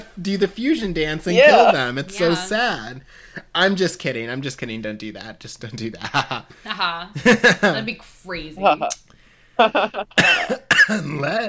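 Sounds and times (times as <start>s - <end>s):
speech: 0.2s - 11.4s
coughs: 10.1s - 11.4s
harsh raspy throat clearing: 10.2s - 11.4s.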